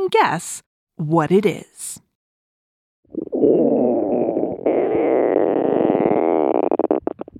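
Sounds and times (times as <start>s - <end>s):
speech: 0.1s - 2.0s
stomach rumbling: 3.1s - 7.3s.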